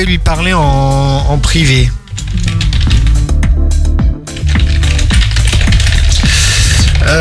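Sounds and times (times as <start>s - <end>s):
speech: 0.0s - 2.5s
fingers typing on a computer keyboard: 2.0s - 3.3s, 4.3s - 7.1s.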